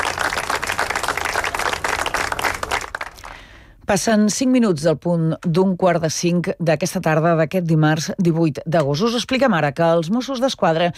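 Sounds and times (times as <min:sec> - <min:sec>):
audience applause: 0:00.0 - 0:03.4
speech: 0:03.9 - 0:10.9.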